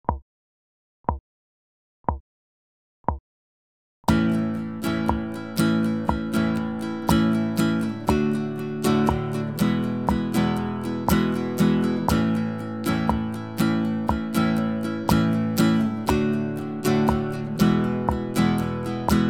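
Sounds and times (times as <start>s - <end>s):
acoustic pop guitar strumming: 4.1s - 19.2s.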